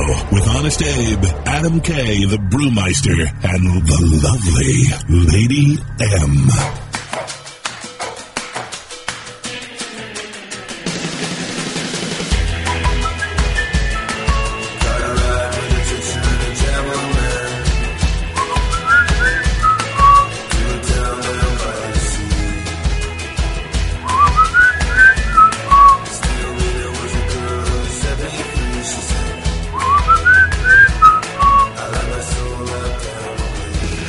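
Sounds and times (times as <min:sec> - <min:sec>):
speech: 0:00.3 - 0:07.4
full band backing track with a thumping beat: 0:06.5 - 0:34.0
person whistling a TV series theme tune: 0:12.7 - 0:14.6, 0:18.4 - 0:20.4, 0:24.0 - 0:26.2, 0:29.7 - 0:31.8.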